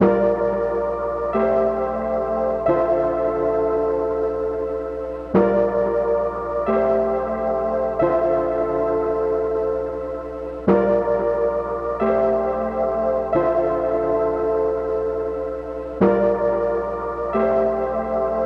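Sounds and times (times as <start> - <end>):
synthesizer chords loop in D minor at 90 BPM: 0.0 - 18.4.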